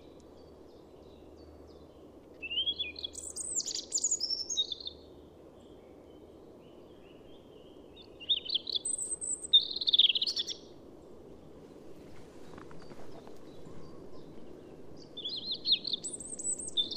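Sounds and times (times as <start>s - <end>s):
faint background hiss: 0.0s - 16.9s
European robin Erithacus rubecula warbling and trilling song: 2.4s - 5.0s, 8.0s - 10.7s, 15.0s - 16.9s.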